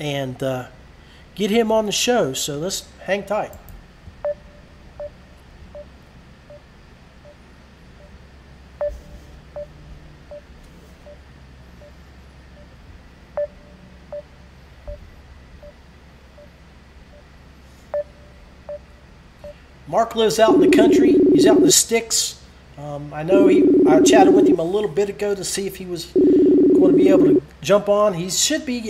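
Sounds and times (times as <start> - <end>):
speech: 0.0 - 0.8, 1.4 - 3.6, 20.1 - 28.8
low hum: 0.0 - 28.8
telephone keypad tones as a number is dialed: 20.4 - 21.8, 23.3 - 24.6, 26.2 - 27.4.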